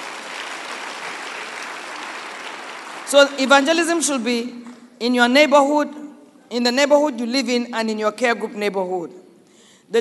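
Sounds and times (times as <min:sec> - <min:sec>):
church congregation applauding: 0:00.0 - 0:03.4
speech: 0:03.1 - 0:09.2.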